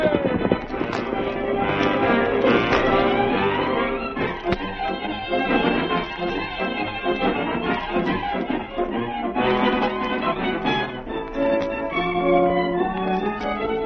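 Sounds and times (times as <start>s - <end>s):
galloping horse hoofbeats: 0.0s - 13.8s.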